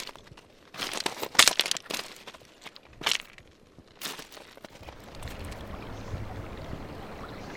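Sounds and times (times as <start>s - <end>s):
crunching footsteps on gravel: 0.0s - 5.4s
shallow river gently babbling: 0.0s - 7.5s.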